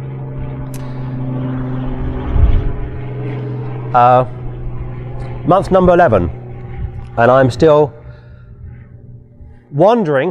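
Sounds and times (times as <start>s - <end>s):
helicopter flying overhead: 0.0s - 10.2s
speech: 3.9s - 4.4s, 5.5s - 6.4s, 7.2s - 8.0s, 9.7s - 10.2s.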